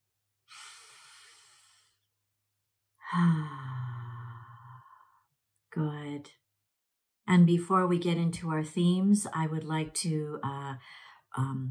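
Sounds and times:
deep breath in and out during a guided breathing moment: 0.5s - 2.1s, 3.0s - 5.3s, 10.8s - 11.3s
speech: 3.1s - 3.6s, 5.8s - 6.4s, 7.3s - 11.6s.

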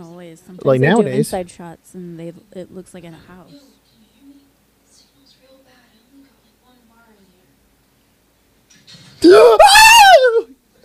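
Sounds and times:
speech: 0.0s - 3.8s, 9.2s - 9.8s
person yelling in fright: 9.2s - 10.5s.

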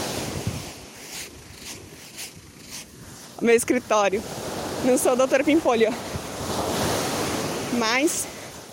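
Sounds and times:
footsteps walking on sand by the sea: 0.0s - 3.5s
wind by the sea: 0.0s - 8.7s
speech: 3.4s - 6.1s, 7.7s - 8.3s.

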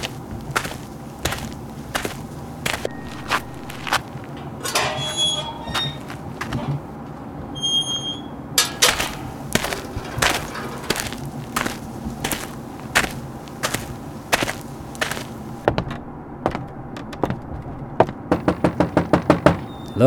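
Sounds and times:
steady low hum: 0.0s - 7.6s, 8.3s - 20.0s
knocking on a door: 18.0s - 19.7s.

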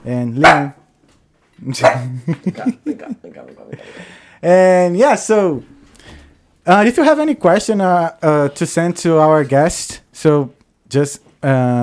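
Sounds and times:
speech: 0.0s - 0.8s, 1.6s - 5.8s, 6.6s - 11.8s
dog barking: 0.4s - 0.8s, 1.8s - 2.1s
laughter: 1.9s - 4.2s.

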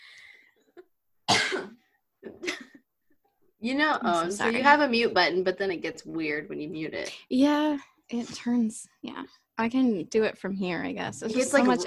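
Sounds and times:
harsh throaty coughs: 1.3s - 2.8s
speech: 3.6s - 11.8s.

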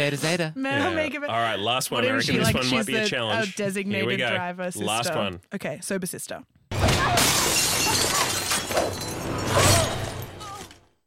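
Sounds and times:
speech: 0.0s - 6.6s
glass shattering: 6.7s - 10.9s.

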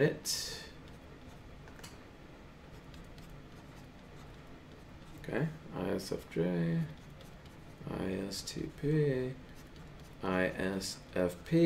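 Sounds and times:
speech: 0.0s - 0.5s, 5.3s - 7.0s, 7.9s - 9.5s, 10.2s - 11.6s
pen writing on paper: 2.7s - 5.3s, 6.8s - 7.8s, 9.5s - 10.2s.

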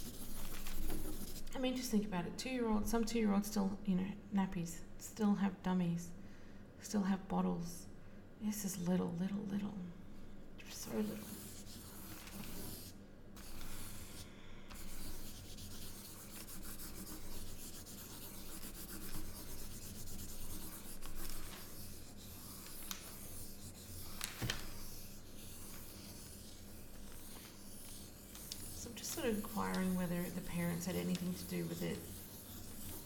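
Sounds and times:
pen scratching on paper while drawing a tight circle: 0.0s - 1.5s, 10.7s - 33.0s
speech: 1.5s - 6.2s, 6.8s - 10.0s, 10.7s - 11.4s, 29.2s - 32.1s.

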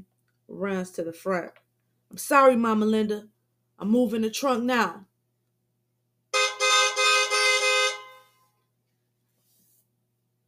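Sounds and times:
speech: 0.5s - 5.1s
car horn honking: 6.4s - 8.4s.

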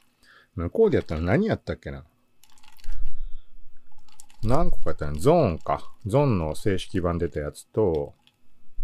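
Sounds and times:
speech: 0.5s - 2.1s, 4.4s - 8.2s
person sipping an energy drink: 2.5s - 4.4s.

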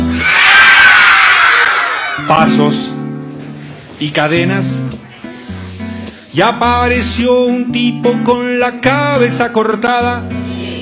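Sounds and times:
people screaming with high-pitched overlapping voices: 0.0s - 2.5s
speech: 2.3s - 3.0s, 4.0s - 5.0s, 6.3s - 10.4s.

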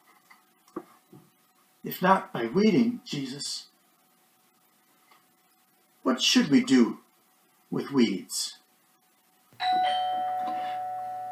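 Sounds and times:
speech: 1.8s - 3.7s, 6.1s - 7.0s, 7.7s - 8.6s
doorbell chime: 9.6s - 11.3s.

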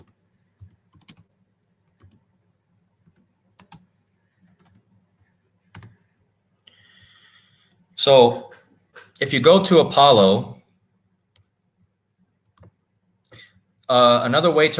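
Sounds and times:
typing on a computer keyboard: 0.0s - 1.3s, 1.9s - 2.2s, 3.0s - 4.8s, 5.7s - 6.0s
speech: 8.0s - 8.5s, 9.2s - 10.5s, 13.9s - 14.7s.

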